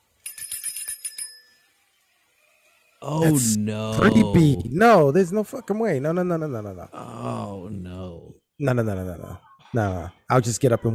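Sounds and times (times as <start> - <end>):
small bell ringing rapidly: 0.2 - 1.8
speech: 3.0 - 7.9, 8.6 - 10.9.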